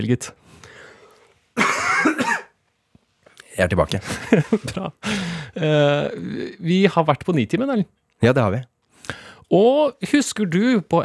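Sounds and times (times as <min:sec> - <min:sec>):
speech: 0:00.0 - 0:00.8, 0:03.6 - 0:11.0
sick person coughing harshly: 0:01.6 - 0:02.6
laughter: 0:04.0 - 0:05.2.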